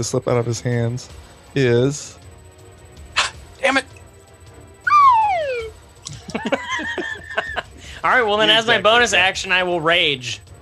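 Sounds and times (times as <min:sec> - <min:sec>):
speech: 0:00.0 - 0:02.2, 0:06.4 - 0:06.6, 0:08.0 - 0:10.4
slide whistle: 0:04.8 - 0:05.7
laughter: 0:06.1 - 0:07.8.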